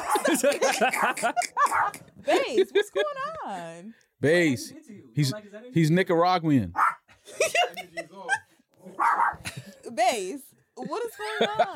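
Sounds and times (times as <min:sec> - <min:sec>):
female dog barking and yapping: 0:00.0 - 0:02.1, 0:06.8 - 0:07.1, 0:09.0 - 0:09.4
laughter: 0:00.0 - 0:03.6, 0:07.1 - 0:10.1, 0:10.8 - 0:11.7
speech: 0:00.2 - 0:08.4, 0:09.0 - 0:11.7.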